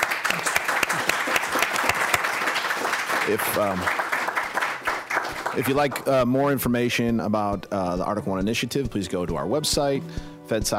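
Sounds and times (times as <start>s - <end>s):
audience applauding the speakers: 0.0s - 6.3s
speech: 3.3s - 4.0s, 5.6s - 10.7s.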